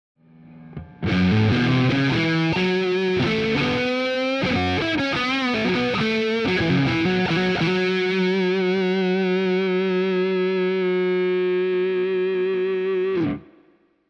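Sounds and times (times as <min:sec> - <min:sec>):
electric guitar through Strat blade neck pickup: 0:00.4 - 0:13.8.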